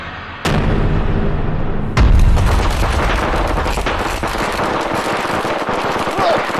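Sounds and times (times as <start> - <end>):
homemade explosive pack stuffed with firecrackers exploding: 0.4 - 6.5
dense crackling of firecrackers: 2.0 - 6.5.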